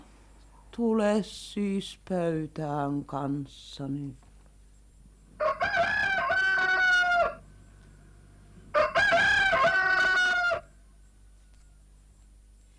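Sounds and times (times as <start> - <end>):
speech: 0.8 - 4.3
rooster crowing: 5.4 - 7.6, 8.7 - 12.0.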